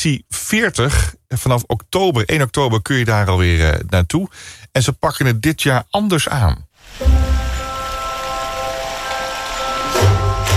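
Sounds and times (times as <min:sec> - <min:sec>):
speech: 0:00.0 - 0:07.3
steady rain pattering on a hard greenhouse roof: 0:06.8 - 0:10.5.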